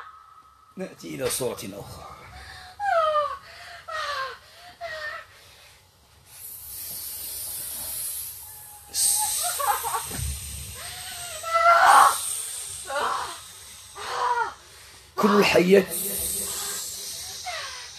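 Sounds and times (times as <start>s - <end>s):
speech: 0.8s - 2.1s, 15.5s - 16.0s
snake hissing: 6.3s - 17.9s.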